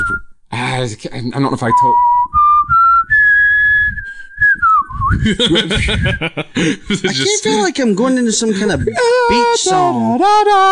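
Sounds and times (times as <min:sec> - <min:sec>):
person whistling a short melodic tune: 0:00.0 - 0:00.3, 0:01.7 - 0:05.4
speech: 0:00.8 - 0:02.2, 0:05.2 - 0:10.7
soft low rumbling thumps: 0:02.6 - 0:06.3
laughter: 0:05.1 - 0:09.9.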